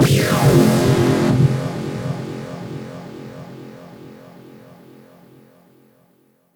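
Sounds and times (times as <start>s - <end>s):
tonal sound effect in F: 0.0s - 4.0s.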